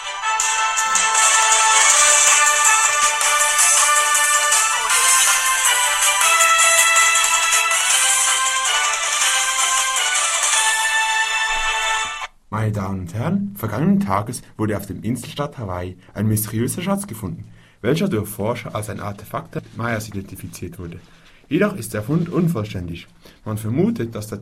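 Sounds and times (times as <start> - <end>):
radio news jingle with bright electronic melodic sting: 0.3 - 11.2
speech: 12.7 - 24.4.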